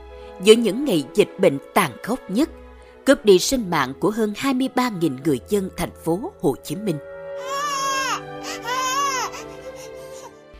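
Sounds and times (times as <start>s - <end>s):
speech: 0.4s - 7.6s
newborn baby crying: 7.4s - 10.4s.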